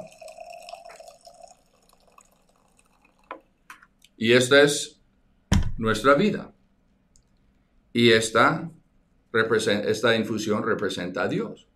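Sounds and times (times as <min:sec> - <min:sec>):
water trickling into a container: 0:00.0 - 0:04.0
speech: 0:04.2 - 0:05.0, 0:05.8 - 0:06.6, 0:07.9 - 0:11.7.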